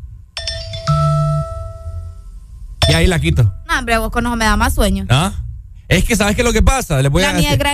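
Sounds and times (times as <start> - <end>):
wake-up alarm ringtone with bright chime-like notes: 0.4 - 3.6
speech: 3.0 - 7.7.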